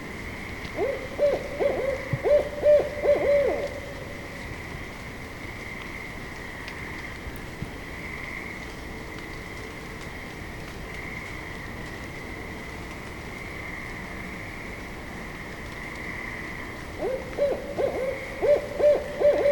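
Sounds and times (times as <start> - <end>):
barred owl hooting: 0.7 - 4.2, 17.0 - 19.5.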